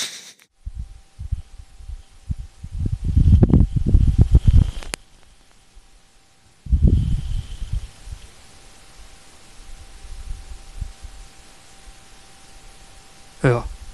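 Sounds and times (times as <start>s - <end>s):
faint hiss: 0.0s - 13.9s
wind from a Martian dust devil buffeting a microphone: 0.6s - 5.0s, 6.6s - 8.3s, 9.6s - 11.3s, 13.6s - 13.9s.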